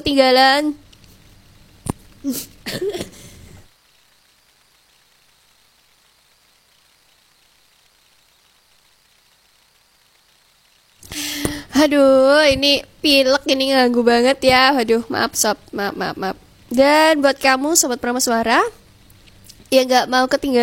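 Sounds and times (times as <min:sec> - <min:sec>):
speech: 0:00.0 - 0:00.8, 0:02.2 - 0:03.2, 0:11.1 - 0:18.8, 0:19.7 - 0:20.6
man coughing: 0:02.3 - 0:03.2.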